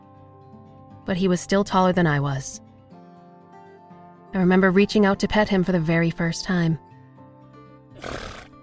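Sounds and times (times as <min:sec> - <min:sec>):
speech: 0:01.0 - 0:02.6, 0:04.3 - 0:06.9, 0:08.0 - 0:08.3
horse whinnying: 0:08.0 - 0:08.6.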